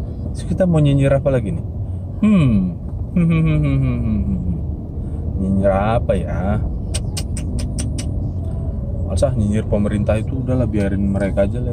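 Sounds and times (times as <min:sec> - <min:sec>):
car engine idling in stopped traffic: 0:00.0 - 0:11.7
speech: 0:00.4 - 0:04.7, 0:05.4 - 0:06.8, 0:09.1 - 0:11.7
sharp evenly spaced ticks: 0:06.9 - 0:08.2.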